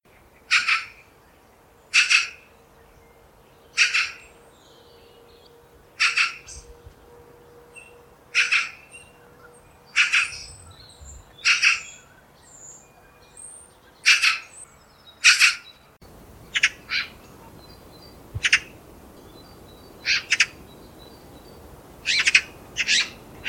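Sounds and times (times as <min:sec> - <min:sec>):
magpie calling: 0:00.5 - 0:01.0, 0:01.9 - 0:02.5, 0:03.7 - 0:04.3, 0:06.0 - 0:06.6, 0:07.8 - 0:09.1, 0:09.9 - 0:10.7, 0:11.4 - 0:12.1, 0:14.0 - 0:14.6, 0:15.2 - 0:15.8, 0:16.5 - 0:17.2, 0:18.4 - 0:18.8, 0:20.0 - 0:20.6, 0:22.0 - 0:23.4.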